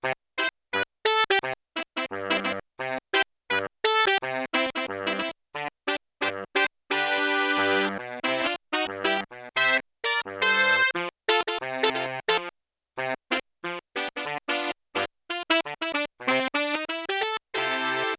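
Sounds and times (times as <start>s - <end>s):
alto and soprano saxophone trio: 1.4s - 18.1s.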